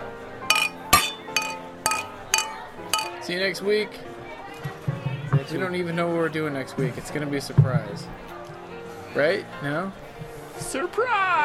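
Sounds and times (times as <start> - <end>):
glasses clinking together in a toast: 0.5 - 3.3
speech: 3.2 - 4.2, 5.5 - 8.3, 9.2 - 10.0, 10.6 - 11.4.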